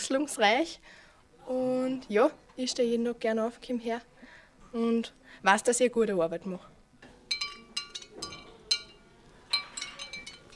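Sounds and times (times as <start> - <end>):
speech: 0.1 - 4.1, 4.7 - 6.7
clay leaf autumn garland clinking and jingling while carried: 7.3 - 10.5.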